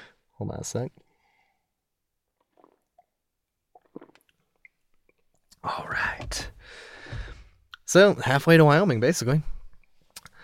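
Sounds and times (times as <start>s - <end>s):
speech: 0.4s - 1.1s, 7.9s - 9.5s
person sipping and slurping hot coffee: 2.3s - 5.6s.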